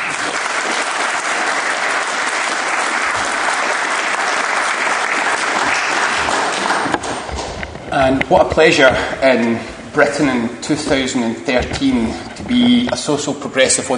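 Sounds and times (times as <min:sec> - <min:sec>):
large audience applauding a speaker: 0:00.0 - 0:07.6
speech: 0:08.0 - 0:13.9.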